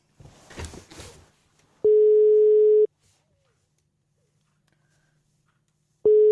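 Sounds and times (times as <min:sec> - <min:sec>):
steady electronic telephone ringback tone while placing a phone call: 0:01.9 - 0:02.9, 0:06.1 - 0:06.3.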